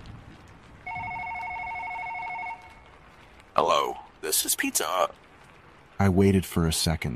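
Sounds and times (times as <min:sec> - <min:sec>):
telephone ringing at a Pizza Hut: 0:00.9 - 0:02.8
speech: 0:03.6 - 0:05.2, 0:06.0 - 0:07.1.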